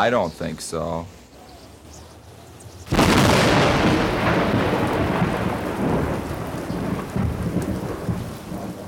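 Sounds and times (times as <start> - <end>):
heavy rain: 2.9 - 8.8
loud crack of thunder rolling and rumbling: 2.9 - 8.8.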